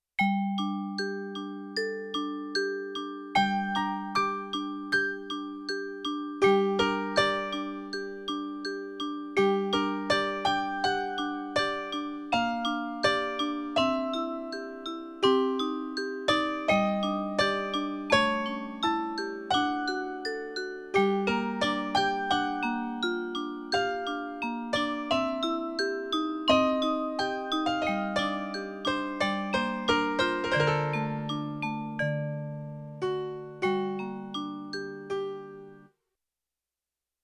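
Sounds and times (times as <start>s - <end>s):
piano and vibraphone jazz performance: 0.2s - 35.8s.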